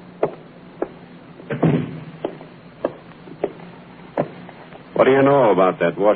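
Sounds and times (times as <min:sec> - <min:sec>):
sharp footstep-like taps: 0:00.2 - 0:04.8
door thudding shut: 0:01.5 - 0:02.2
speech: 0:05.0 - 0:06.1.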